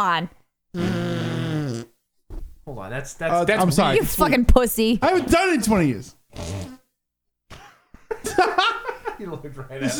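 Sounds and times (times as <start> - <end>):
speech: 0.0 - 1.1, 2.7 - 6.6, 9.2 - 9.9
armpit farts made by hand: 0.8 - 2.0, 6.3 - 6.9
laughter: 7.7 - 9.9.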